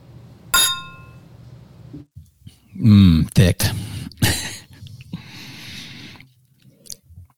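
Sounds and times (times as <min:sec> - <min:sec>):
cups of ginger and garlic soup clinking in a toast: 0:00.6 - 0:01.1
speech: 0:02.8 - 0:03.8.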